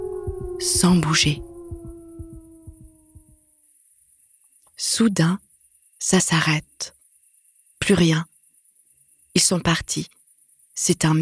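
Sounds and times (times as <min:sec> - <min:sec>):
low double thump of a heartbeat: 0:00.0 - 0:03.4
pack of wolves howling together: 0:00.0 - 0:03.4
speech: 0:00.6 - 0:01.5, 0:05.0 - 0:05.4, 0:06.0 - 0:07.0, 0:07.9 - 0:08.3, 0:09.4 - 0:10.2, 0:10.8 - 0:11.2.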